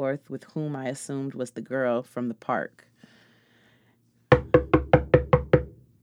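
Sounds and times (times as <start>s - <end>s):
speech: 0.0s - 3.2s, 4.5s - 5.0s
knocking on a door: 4.3s - 5.8s.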